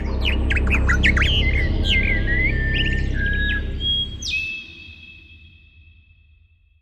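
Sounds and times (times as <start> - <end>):
low rumble of noise: 0.0 - 4.3
several birds singing and chirping outdoors: 0.0 - 5.3.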